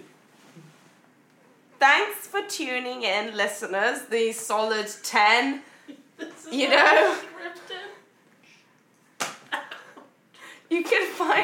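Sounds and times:
speech: 1.8s - 5.7s, 6.5s - 7.3s, 10.7s - 11.4s
sharp loud slap: 9.2s - 9.5s
softer smack: 9.2s - 9.5s.

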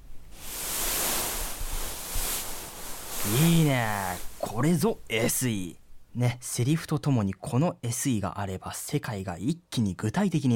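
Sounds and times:
beads rustling as something sinks into a bead cushion: 0.3s - 5.4s
speech: 3.2s - 10.5s.

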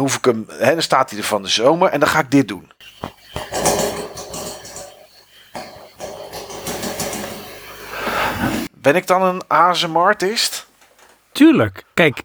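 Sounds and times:
speech: 0.0s - 3.8s, 8.8s - 10.6s, 11.4s - 12.2s
electric fan running: 2.8s - 11.3s
short knocks and rattles: 2.8s - 11.4s.

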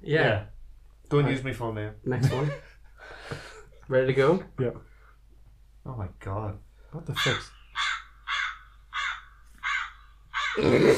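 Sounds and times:
speech: 0.1s - 0.5s, 1.1s - 2.7s, 3.3s - 4.9s, 5.8s - 7.6s, 10.6s - 10.9s
crow giving harsh raspy caws: 7.1s - 10.8s.

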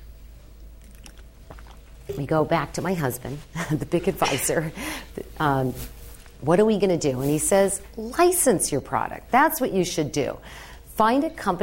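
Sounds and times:
low steady hum: 0.0s - 11.6s
person sipping water with mouth clicks and slurp: 0.8s - 2.2s
speech: 2.1s - 11.6s.

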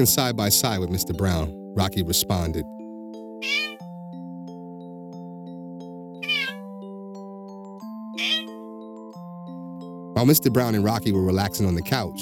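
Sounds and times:
speech: 0.0s - 2.8s, 10.2s - 12.2s
family cat meowing while walking: 3.4s - 3.9s, 6.2s - 6.7s, 8.2s - 8.6s.

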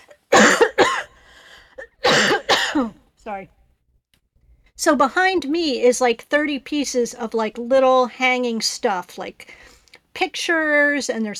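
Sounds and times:
person coughing harshly: 0.0s - 3.0s
speech: 2.8s - 3.6s, 4.8s - 11.3s.

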